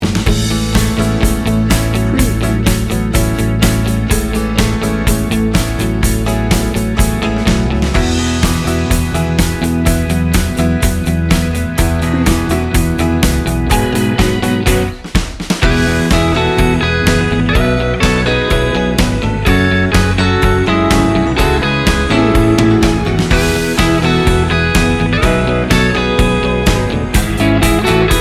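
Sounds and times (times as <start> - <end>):
warm upbeat soft rock music: 0.0 - 28.1.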